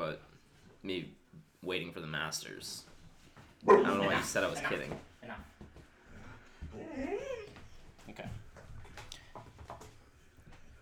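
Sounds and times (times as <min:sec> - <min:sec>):
speech: 0:00.0 - 0:02.9, 0:03.6 - 0:05.5, 0:08.1 - 0:08.4
female dog drawn-out wavering whine-like cry: 0:06.8 - 0:07.7.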